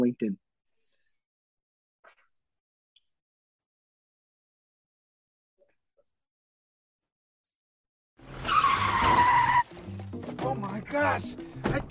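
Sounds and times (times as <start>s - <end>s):
speech: 0.1s - 0.5s, 10.9s - 11.9s
car tires screeching in a skid during a crash: 8.2s - 9.9s.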